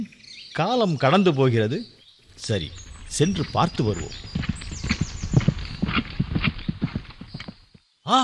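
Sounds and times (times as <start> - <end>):
speech: 0.0 - 4.4, 8.1 - 8.2
horse hooves clip-clopping: 2.3 - 7.8.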